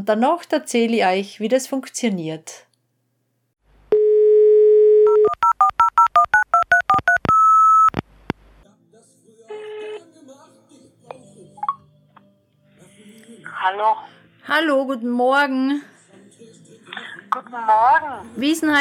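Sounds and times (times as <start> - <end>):
speech: 0.0 - 2.7, 13.6 - 15.9, 17.3 - 18.7
steady telephone dial tone: 3.9 - 8.0.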